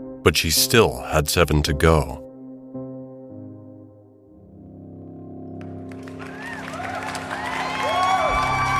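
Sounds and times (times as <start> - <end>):
speech: 0.2 - 2.2
crowd cheering and whooping: 6.2 - 8.7.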